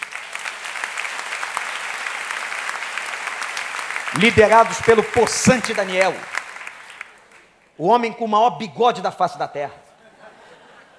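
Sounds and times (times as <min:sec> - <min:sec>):
large church audience applauding: 0:00.0 - 0:07.6
speech: 0:04.1 - 0:06.4, 0:07.8 - 0:09.8
laughter: 0:09.9 - 0:10.9.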